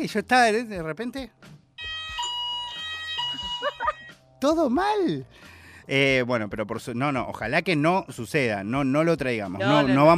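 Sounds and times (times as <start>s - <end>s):
speech: 0.0s - 1.6s, 4.4s - 10.1s
fire alarm blaring with a piercing electronic tone: 1.8s - 4.2s
laughter: 3.3s - 4.1s.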